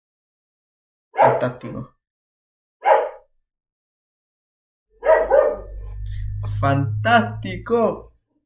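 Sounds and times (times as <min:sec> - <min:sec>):
dog barking: 0:01.2 - 0:01.5, 0:02.8 - 0:03.3, 0:05.0 - 0:05.8
speech: 0:01.2 - 0:02.0, 0:06.6 - 0:08.1
low steady hum: 0:05.4 - 0:08.1.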